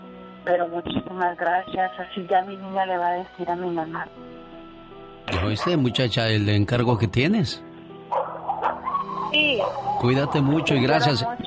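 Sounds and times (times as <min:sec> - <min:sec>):
speech: 0:00.4 - 0:04.4, 0:05.3 - 0:07.7, 0:09.3 - 0:11.4
dogs barking: 0:05.3 - 0:06.3, 0:08.1 - 0:11.2
dogs yipping and whining: 0:08.1 - 0:11.1.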